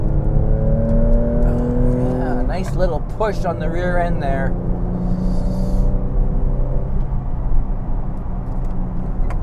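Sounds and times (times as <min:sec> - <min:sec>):
car engine revving hard through a corner in second gear: 0:00.0 - 0:09.3
speech: 0:02.6 - 0:04.7.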